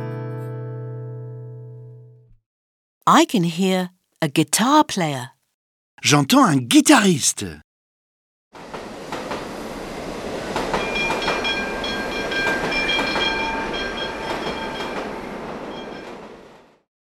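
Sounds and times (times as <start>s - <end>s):
speech: 3.1s - 5.3s, 6.0s - 7.7s
tram wheels rumbling on rails: 8.6s - 16.8s.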